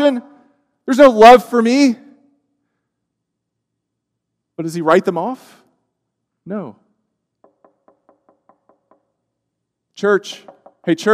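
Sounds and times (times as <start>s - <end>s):
speech: 0.0s - 0.3s, 0.9s - 2.0s, 4.6s - 5.6s, 6.4s - 6.8s, 10.0s - 11.1s
firm knocking on a door: 7.4s - 9.1s, 10.3s - 11.1s.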